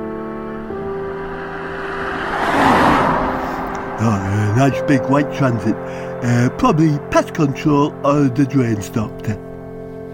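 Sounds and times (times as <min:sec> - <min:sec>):
small blue diesel BMW car passing, possibly a 3 Series: 0:00.0 - 0:07.7
speech: 0:04.0 - 0:09.4.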